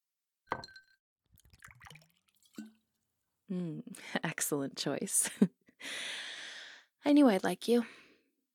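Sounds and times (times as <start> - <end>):
glass clinking: 0.5 - 0.9
drink splashing and trickling into a glass: 1.4 - 2.8
speech: 3.5 - 6.2, 7.0 - 8.0.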